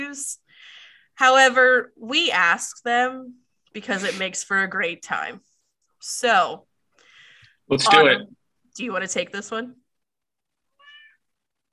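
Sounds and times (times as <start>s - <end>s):
speech: 0.1s - 0.4s, 1.2s - 6.7s, 7.7s - 9.8s
cat meowing: 10.7s - 11.2s.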